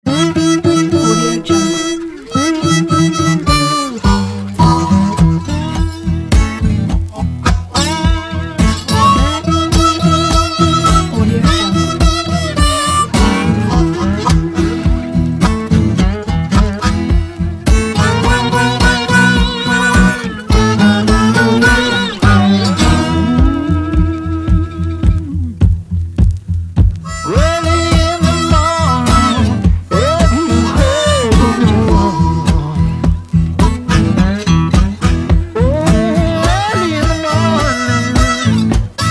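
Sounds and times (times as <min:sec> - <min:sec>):
blues with vocals: 0:00.0 - 0:39.0.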